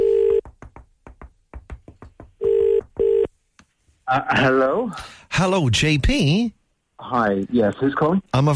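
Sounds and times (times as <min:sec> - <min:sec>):
phone line ringing tone: 0:00.0 - 0:00.4, 0:02.4 - 0:03.3
speech: 0:04.1 - 0:08.5.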